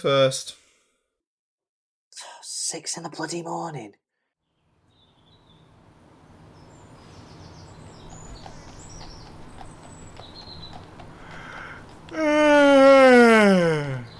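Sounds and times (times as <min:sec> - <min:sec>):
speech: 0:00.0 - 0:00.6, 0:02.7 - 0:04.0, 0:12.1 - 0:12.7
faint bird chirps: 0:06.4 - 0:11.6
person letting out a long voiced yawn: 0:12.1 - 0:14.1.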